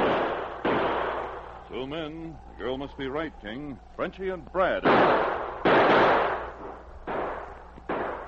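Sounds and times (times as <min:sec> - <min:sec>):
gunshots from outlaws in a gunfight on a snowy tree-lined trail: 0:00.0 - 0:01.8, 0:04.6 - 0:08.2
speech: 0:01.8 - 0:05.4.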